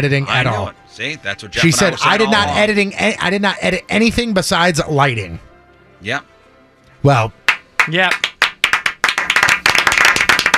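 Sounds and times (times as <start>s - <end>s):
speech: 0.0s - 6.3s, 7.0s - 8.3s
hands clapping: 7.4s - 10.5s.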